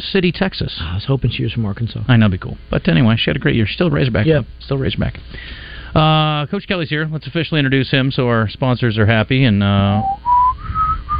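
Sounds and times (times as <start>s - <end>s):
speech: 0.0s - 10.4s
person whistling a short clear steady tone: 10.0s - 11.1s.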